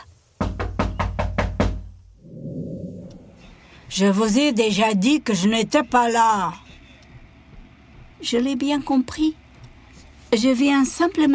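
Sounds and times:
firm knocks on a shop door: 0.4s - 1.9s
speech: 3.9s - 6.6s, 8.2s - 9.4s, 10.3s - 11.3s.

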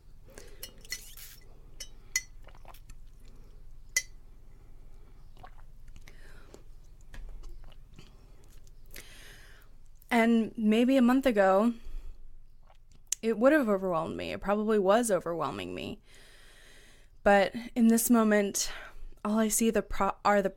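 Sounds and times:
low steady hum: 0.0s - 20.2s
person sipping a drink: 0.3s - 9.2s, 12.5s - 13.1s
glass clinks: 1.8s - 2.4s
wet mouth and swallowing noises: 2.4s - 3.8s, 5.2s - 9.0s, 12.5s - 13.2s
speech: 10.2s - 11.8s, 13.3s - 16.2s, 17.2s - 20.5s.

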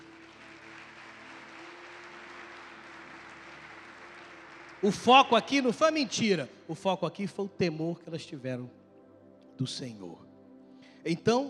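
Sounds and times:
audience applause in a large room: 0.0s - 6.1s
speech: 4.8s - 8.8s, 9.6s - 10.2s, 11.0s - 11.4s.

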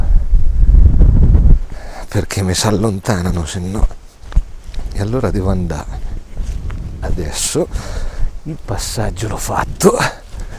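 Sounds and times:
wind buffeting microphone despite windscreen out in nature: 0.0s - 10.5s
speech: 2.2s - 4.0s, 5.0s - 6.0s, 7.1s - 10.2s.

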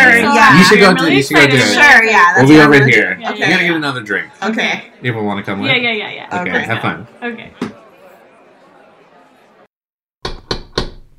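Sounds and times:
speech: 0.0s - 7.8s
murmured crowd chatter: 0.0s - 9.7s
loud heavy banging on a door: 10.2s - 11.1s.

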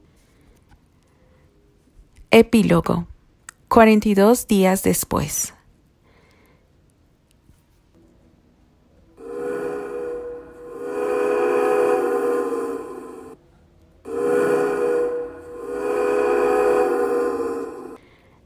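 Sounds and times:
speech: 2.3s - 3.1s, 3.7s - 5.6s
steam train whistle blasts with hissing steam: 9.2s - 13.4s, 14.1s - 18.0s.

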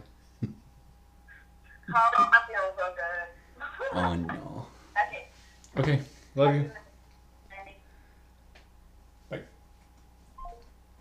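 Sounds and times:
speech: 1.9s - 3.2s, 3.9s - 4.5s, 5.8s - 6.8s
soft telephone call tones: 10.4s - 10.8s.

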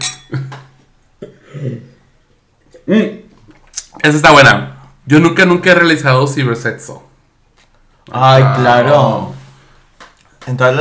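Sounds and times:
glasses clinking in a toast: 0.0s - 0.6s
speech: 1.6s - 1.9s, 4.0s - 7.1s, 8.1s - 9.4s, 10.4s - 10.7s.

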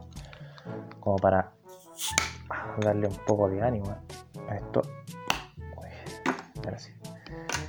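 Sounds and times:
speech: 1.0s - 5.1s, 6.6s - 7.0s
beer bottle cap popped off with lighter: 1.8s - 2.4s.

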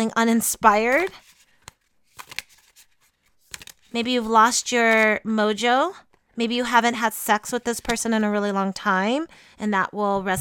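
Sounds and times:
speech: 0.0s - 1.3s, 3.9s - 10.4s
tarot cards being shuffled: 0.7s - 5.0s.

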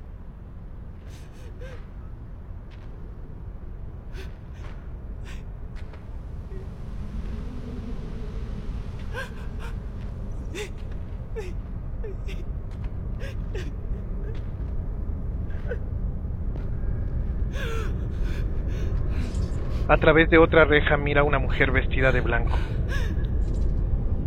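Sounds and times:
steady low rumble: 0.0s - 24.2s
woman sobbing and gasping: 1.1s - 1.8s, 4.1s - 5.5s, 9.0s - 12.5s, 13.2s - 14.4s, 17.5s - 20.0s, 22.5s - 23.3s
speech: 19.9s - 22.8s.

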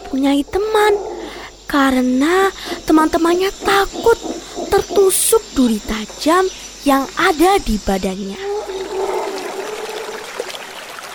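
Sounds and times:
faint sustained humming tone: 0.0s - 10.3s
speech: 0.1s - 1.1s, 1.7s - 8.4s
river water flowing: 8.5s - 11.1s.

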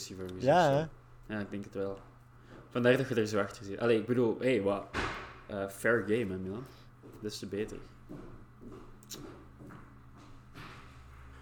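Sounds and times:
speech: 0.0s - 2.1s, 2.8s - 9.4s
low steady hum: 0.0s - 11.4s
soft footsteps of someone walking: 1.0s - 3.7s, 5.8s - 11.4s.

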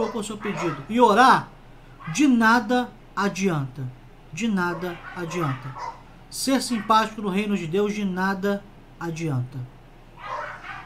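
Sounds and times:
dogs barking as they fight: 0.0s - 1.2s, 1.9s - 2.5s, 4.4s - 7.4s, 10.2s - 10.8s
low hum: 0.0s - 10.8s
speech: 0.1s - 9.8s.

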